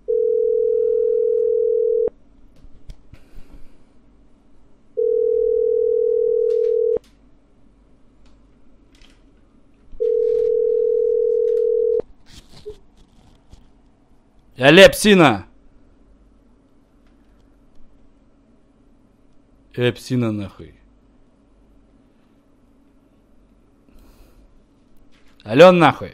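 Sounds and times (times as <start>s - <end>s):
telephone ringback tone while a call is placed: 0.0s - 2.1s, 5.0s - 7.0s, 10.0s - 12.0s
speech: 14.6s - 15.5s, 19.8s - 20.8s, 25.4s - 26.1s.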